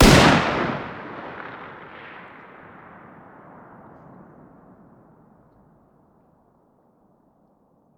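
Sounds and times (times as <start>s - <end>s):
distant .308 rifle fire: 0.0s - 5.3s.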